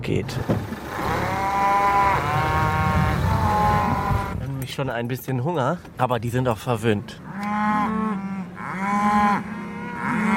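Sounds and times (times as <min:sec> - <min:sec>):
speech: 0:00.0 - 0:00.7, 0:04.7 - 0:07.2
young cattle calves mooing in a pasture: 0:00.8 - 0:04.4, 0:07.2 - 0:10.3.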